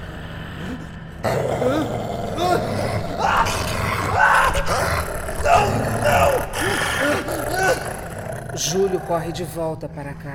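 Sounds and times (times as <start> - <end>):
white lions growling and snarling as they attack: 0.6 - 9.6
speech: 8.6 - 10.3.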